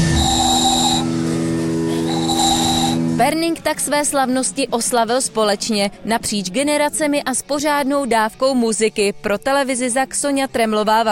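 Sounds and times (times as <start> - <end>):
small handmade whistle with steady breathy tones: 0.0 - 3.1
continuous low hum: 0.0 - 3.2
speech: 3.2 - 11.1.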